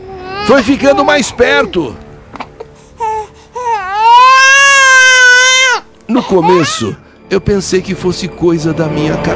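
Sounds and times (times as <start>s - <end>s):
infant crying in a long loud wail: 0.0s - 7.1s
speech: 0.5s - 2.0s, 6.2s - 9.3s.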